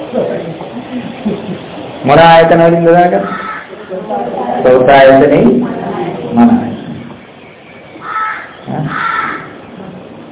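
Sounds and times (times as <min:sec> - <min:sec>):
steady noise: 0:00.0 - 0:10.2
speech: 0:00.1 - 0:00.6, 0:02.1 - 0:03.4, 0:04.1 - 0:06.7
laughter: 0:00.1 - 0:02.0
crow cawing: 0:03.2 - 0:04.0, 0:08.0 - 0:09.7.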